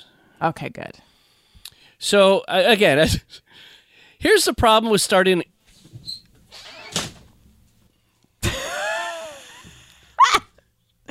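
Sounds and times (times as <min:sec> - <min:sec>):
speech: 0:00.0 - 0:01.1, 0:02.0 - 0:05.5
door opening with a drawn-out scraping squeal: 0:06.0 - 0:07.2.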